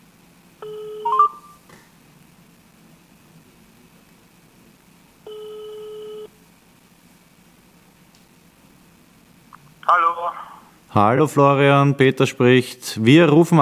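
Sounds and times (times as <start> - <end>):
buzzy telephone ringback tones: 0.6 - 1.6, 5.3 - 6.3
speech: 9.9 - 13.6.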